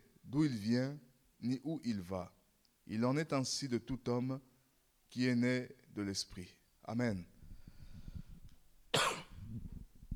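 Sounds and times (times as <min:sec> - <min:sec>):
speech: 0:00.3 - 0:04.5, 0:05.1 - 0:07.3
person coughing: 0:08.9 - 0:09.6.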